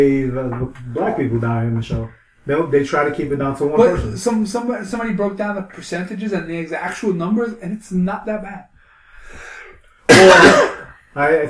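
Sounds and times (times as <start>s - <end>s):
speech: 0.0s - 8.7s, 11.2s - 11.4s
cough into hand: 10.1s - 11.0s.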